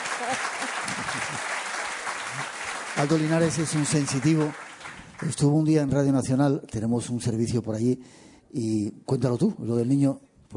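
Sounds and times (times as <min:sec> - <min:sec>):
audience applause: 0:00.0 - 0:05.6
speech: 0:00.2 - 0:01.5, 0:02.3 - 0:04.6, 0:05.2 - 0:10.5.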